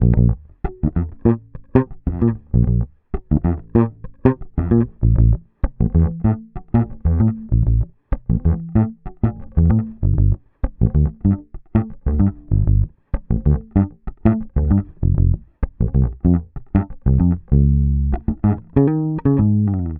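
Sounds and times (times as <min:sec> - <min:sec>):
electric bass loop in F: 0:00.0 - 0:19.9.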